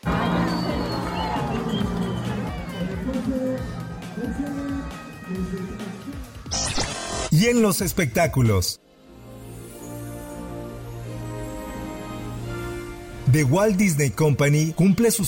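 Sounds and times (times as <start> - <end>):
large crowd whistling: 0.0 - 5.8
large crowd booing in disapproval: 0.0 - 6.6
speech: 3.3 - 8.8, 13.3 - 15.2
sharp burst of noise: 6.5 - 7.4.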